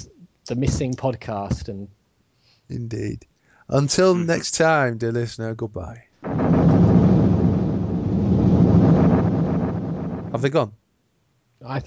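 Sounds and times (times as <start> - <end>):
speech: 0.0 - 2.0, 2.7 - 6.1, 10.4 - 10.8, 11.6 - 11.8
blustery wind: 6.2 - 10.5
deep continuous thunder rumbling: 6.2 - 10.5.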